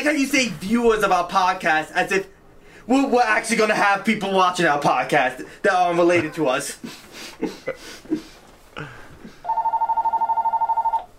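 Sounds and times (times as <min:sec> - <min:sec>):
speech: 0:00.0 - 0:09.0
laughter: 0:06.0 - 0:09.4
telephone ringing with an electronic trill: 0:09.4 - 0:11.1.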